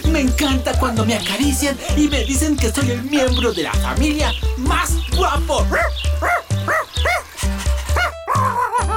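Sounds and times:
speech: 0.2s - 6.3s
dog barking in quick yips and whiny yelps: 5.7s - 7.3s, 7.9s - 8.8s.

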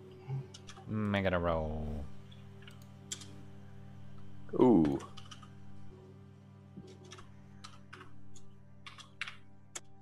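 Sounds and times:
steady low electrical hum: 0.0s - 10.0s
speech: 0.9s - 2.1s, 4.5s - 5.1s
typing on a computer keyboard: 4.9s - 5.5s, 8.8s - 9.4s.

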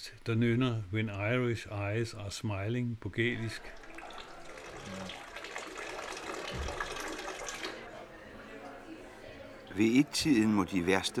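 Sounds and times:
speech: 0.0s - 3.8s, 4.8s - 5.2s, 9.8s - 11.1s
urination into a pub urinal: 3.2s - 8.0s
faint indistinct voices in a pub: 3.2s - 11.1s
running water in a pub urinal: 3.4s - 8.6s.

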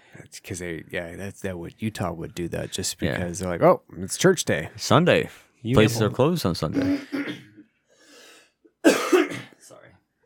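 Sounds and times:
speech: 0.3s - 7.5s
sharp rough cough with throaty rasp: 6.8s - 7.7s, 8.8s - 9.6s.

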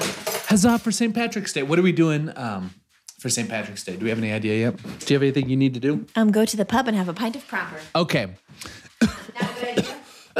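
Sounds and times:
speech: 0.5s - 10.3s
sharp harsh coughs: 9.0s - 10.3s.

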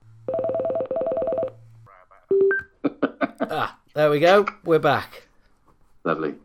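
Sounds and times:
steady low phone dial tone: 0.3s - 1.6s
speech: 3.5s - 5.2s, 6.0s - 6.4s.

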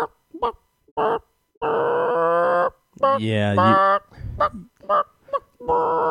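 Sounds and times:
speech: 0.0s - 1.2s, 3.0s - 6.0s
person imitating a chicken with clucking and a drawn-out screech: 1.6s - 4.8s.

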